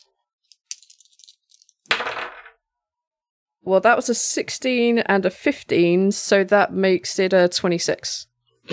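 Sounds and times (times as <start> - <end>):
dice rattling as they are shaken: 0.6 - 2.6
speech: 3.6 - 8.7.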